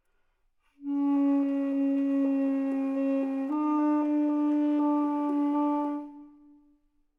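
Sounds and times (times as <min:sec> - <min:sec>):
slow tenor sax: 0:00.8 - 0:06.7.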